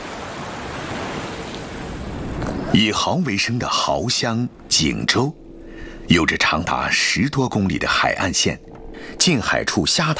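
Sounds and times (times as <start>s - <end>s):
tide waves washing on a long seashore: 0.0s - 3.0s
speech: 2.7s - 5.4s, 6.1s - 10.1s.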